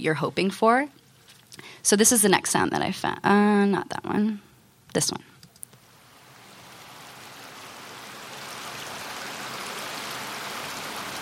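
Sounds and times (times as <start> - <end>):
speech: 0.0 - 1.0, 1.6 - 5.3
river or stream water flowing: 5.8 - 11.2.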